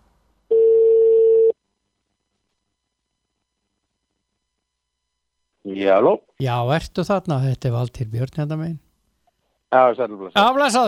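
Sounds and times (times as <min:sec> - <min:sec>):
ringback tone of an outgoing phone call: 0:00.5 - 0:01.6
speech: 0:05.8 - 0:08.8, 0:09.7 - 0:10.8.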